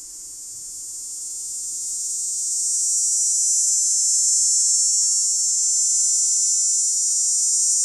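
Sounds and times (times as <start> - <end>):
dog-day cicada shrill buzzing song: 0.2 - 7.8.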